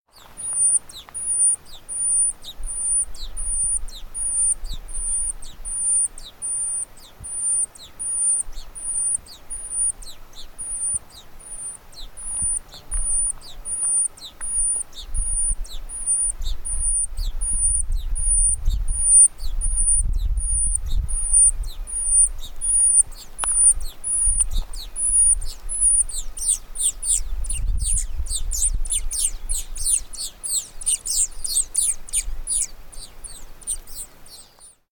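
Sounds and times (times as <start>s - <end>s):
Brandt's mountain finch Leucosticte brandti: 0.1s - 34.9s.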